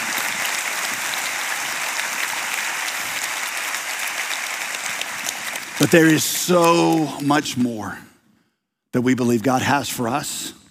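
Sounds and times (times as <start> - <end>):
audience clapping and applause: 0.0 - 7.8
speech: 5.8 - 8.1, 8.9 - 10.6.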